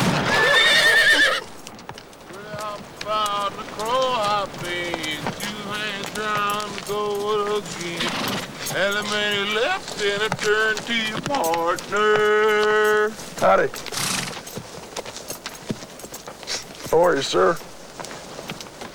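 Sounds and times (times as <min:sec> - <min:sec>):
horse whinnying: 0:00.0 - 0:01.6, 0:07.5 - 0:10.2, 0:13.1 - 0:14.6
hooves clip-clopping: 0:00.0 - 0:18.9
speech: 0:08.8 - 0:13.9, 0:16.9 - 0:17.7.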